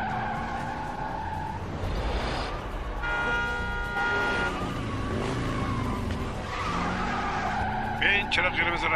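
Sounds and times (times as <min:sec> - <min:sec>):
speeding car engine roaring in third gear: 0:00.0 - 0:08.9
tires screeching in skids: 0:00.0 - 0:08.9
car horn toot: 0:03.0 - 0:04.8
speech: 0:08.3 - 0:08.9.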